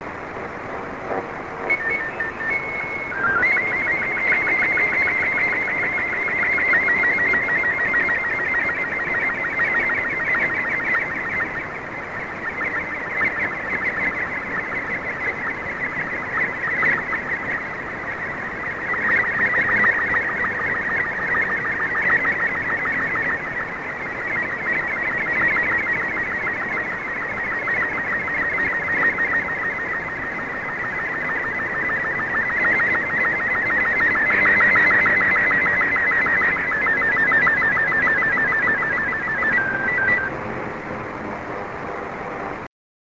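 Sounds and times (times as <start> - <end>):
SSTV signal tones: 0.0 - 42.3.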